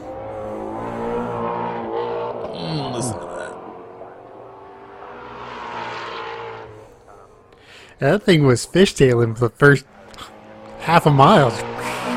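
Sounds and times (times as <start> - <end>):
2015 or 2016 Ford Mustang engine roaring at a speed event in Europe: 0.0 - 12.1
speech: 8.0 - 10.3, 10.9 - 11.7.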